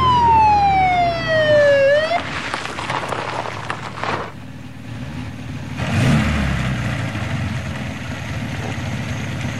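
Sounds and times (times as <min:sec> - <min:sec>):
police siren on a black-green Mercedes 220 police car in Stuttgart: 0:00.0 - 0:02.5
Mercedes 220 police car engine rumbling: 0:00.0 - 0:09.5.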